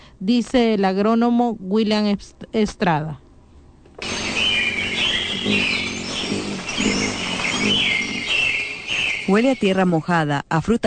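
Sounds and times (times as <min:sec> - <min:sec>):
speech: 0:00.2 - 0:03.2, 0:05.4 - 0:05.8, 0:09.3 - 0:10.8
many birds chirping and trilling outdoors: 0:04.0 - 0:10.2.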